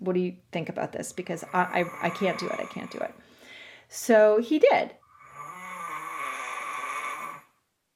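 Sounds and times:
speech: 0:00.0 - 0:03.3, 0:03.9 - 0:05.0
loud rasping snore: 0:01.4 - 0:03.2, 0:05.1 - 0:07.6.

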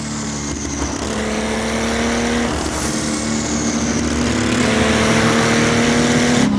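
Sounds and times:
car engine revving and accelerating: 0:00.0 - 0:06.5.

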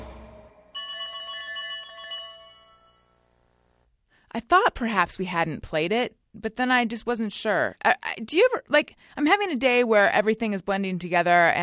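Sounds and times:
low rumble: 0:00.0 - 0:00.6
bright electronic telephone ring: 0:00.7 - 0:03.3
speech: 0:04.4 - 0:11.6.

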